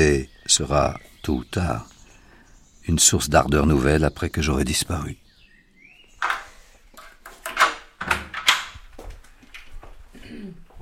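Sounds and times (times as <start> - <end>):
speech: 0.1 - 1.9, 2.9 - 5.2
wooden office door creaking: 6.2 - 10.0
wooden office door knocking thumps and rattles: 7.3 - 9.1.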